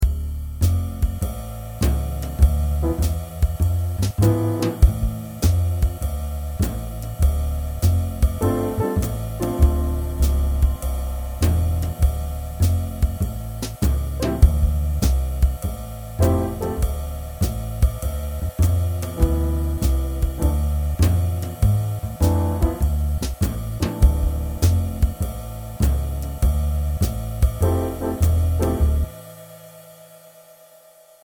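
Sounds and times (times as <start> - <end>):
jazz backing track in Dm7: 0.0 - 29.2.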